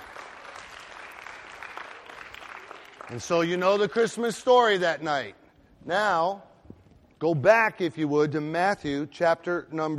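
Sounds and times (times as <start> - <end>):
audience applause: 0.0 - 3.7
speech: 3.1 - 6.5, 7.2 - 9.9.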